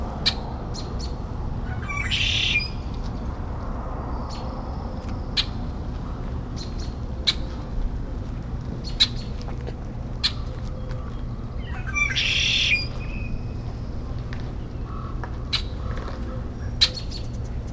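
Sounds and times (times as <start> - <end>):
low hum and rumble of neighborhood noise: 0.0 - 17.7
Red-winged Blackbird calling: 0.2 - 2.8, 8.8 - 9.4, 10.2 - 13.6, 14.7 - 17.7.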